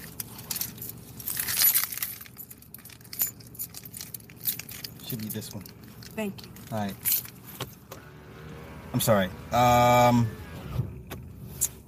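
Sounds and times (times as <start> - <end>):
bunch of keys jangling: 0.0 - 7.4
low rumble: 0.0 - 11.8
speech: 5.1 - 7.2, 8.9 - 10.4.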